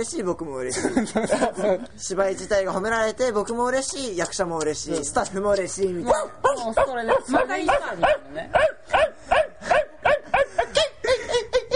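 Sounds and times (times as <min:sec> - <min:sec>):
speech: 0:00.0 - 0:09.1
laughter: 0:00.7 - 0:02.0, 0:09.5 - 0:11.7
dog giving short high-pitched whining barks: 0:06.1 - 0:10.6.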